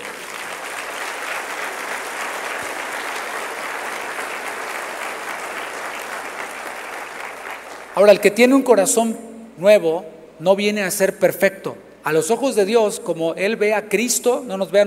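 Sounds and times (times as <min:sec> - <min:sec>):
audience applauding: 0:00.0 - 0:08.2
speech: 0:08.0 - 0:14.8.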